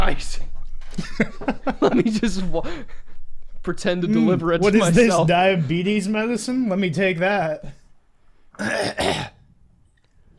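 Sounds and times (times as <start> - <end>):
speech: 0.1 - 3.0, 3.6 - 7.8, 8.6 - 9.3
laughter: 0.9 - 3.2
harsh throat clearing and coughing: 8.6 - 9.4.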